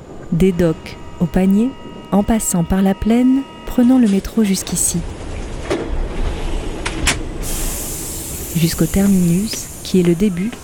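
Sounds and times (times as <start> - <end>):
cars and buses rumbling at a metro terminus in Marseille: 0.0 - 10.6
speech: 0.3 - 5.2, 8.6 - 10.6
hissing bursts from cars and buses at a metro terminus: 7.4 - 10.2.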